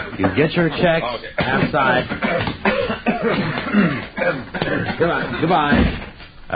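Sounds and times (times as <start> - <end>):
speech: 0.2 - 6.5
people hired to cough during a wedding scene coughing: 1.1 - 6.1.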